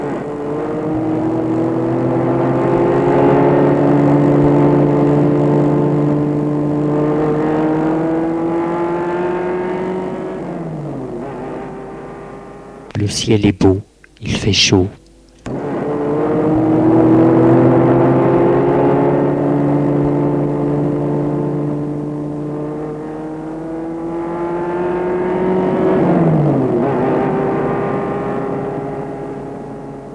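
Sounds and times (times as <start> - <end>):
car engine humming while driving: 0.0 - 30.1
speech: 13.2 - 13.8, 14.5 - 15.0.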